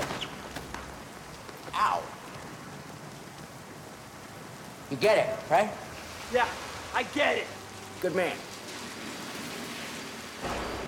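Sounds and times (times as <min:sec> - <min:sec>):
steady dense rain falling: 0:00.0 - 0:10.8
speech: 0:01.8 - 0:02.2, 0:04.9 - 0:08.5.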